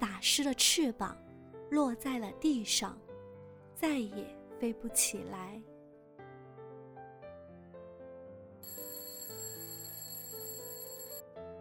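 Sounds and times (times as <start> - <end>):
speech: 0.2 - 3.0, 3.8 - 5.7
alarm clock ringing with a melodic electronic tune: 8.6 - 11.2.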